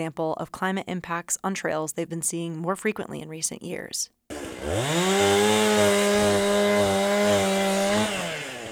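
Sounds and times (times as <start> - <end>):
speech: 0.0 - 8.2
chainsaw cutting through a fallen tree: 4.3 - 8.6.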